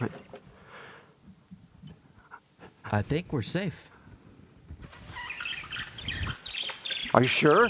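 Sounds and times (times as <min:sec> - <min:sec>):
birds chirping: 0:00.0 - 0:07.6
speech: 0:02.9 - 0:03.9, 0:07.2 - 0:07.6.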